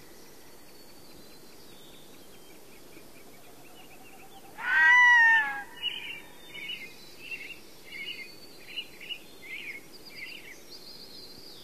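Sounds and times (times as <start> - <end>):
Red-throated loon uttering a short mewing wail in North America: 4.6 - 6.0.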